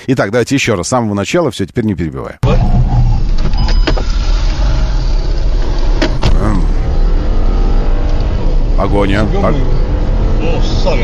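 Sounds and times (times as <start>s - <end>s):
speech: 0.1s - 2.8s, 8.8s - 9.8s, 10.6s - 11.0s
dense road traffic rumble: 2.4s - 11.0s
motorcycle engine roaring while weaving through road traffic during a chase: 3.9s - 11.0s.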